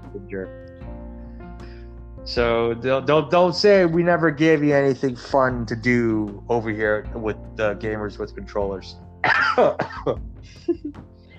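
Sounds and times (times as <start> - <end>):
speech: 0.1 - 0.8, 2.2 - 11.1
harsh coughs: 9.2 - 10.2.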